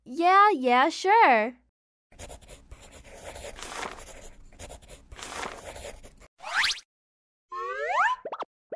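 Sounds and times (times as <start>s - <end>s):
speech: 0.2s - 1.6s
pencil scratching and scribbling on a sketchbook: 2.1s - 6.3s
bouncy springy cartoon sound effects: 7.5s - 8.7s.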